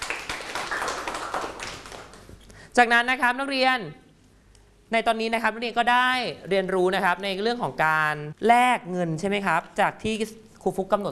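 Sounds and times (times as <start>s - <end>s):
students in a classroom clapping for a group: 0.0s - 2.3s
speech: 2.8s - 4.0s, 4.9s - 11.0s.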